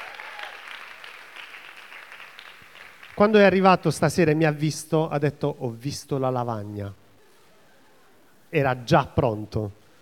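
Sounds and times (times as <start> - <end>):
audience applause at a Sunday evening church meeting: 0.0 - 3.3
speech: 3.2 - 7.0, 8.5 - 9.8.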